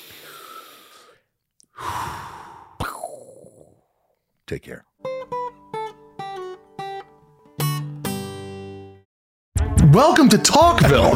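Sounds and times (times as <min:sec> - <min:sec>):
slow deep breathing: 0:00.0 - 0:04.4
speech: 0:04.5 - 0:05.0, 0:10.0 - 0:11.1.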